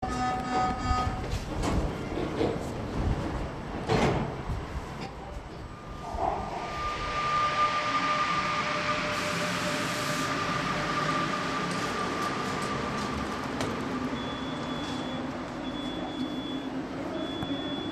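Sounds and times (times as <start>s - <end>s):
metro train departing: 0.0s - 17.8s.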